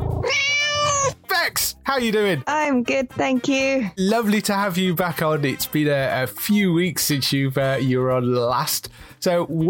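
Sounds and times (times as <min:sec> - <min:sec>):
cat meowing: 0:00.2 - 0:01.3
speech: 0:01.9 - 0:09.6.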